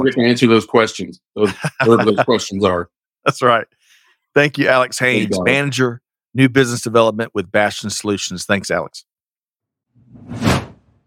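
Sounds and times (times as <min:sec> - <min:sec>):
speech: 0:00.0 - 0:09.1, 0:10.1 - 0:10.7
laughter: 0:01.4 - 0:02.8, 0:05.2 - 0:05.6
transition swoosh sound effect: 0:10.0 - 0:11.0.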